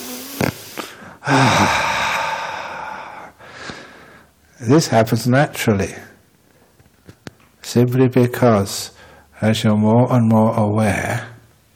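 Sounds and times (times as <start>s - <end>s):
deep breath drawn in and let out slowly: 0.0s - 4.4s, 8.9s - 9.3s
speech: 1.3s - 1.8s, 4.6s - 6.1s, 7.7s - 11.3s.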